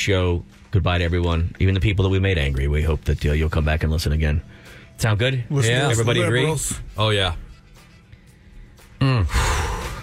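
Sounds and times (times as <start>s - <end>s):
speech: 0.0s - 7.4s
heavy out-of-breath breathing: 4.4s - 5.0s, 8.2s - 10.0s.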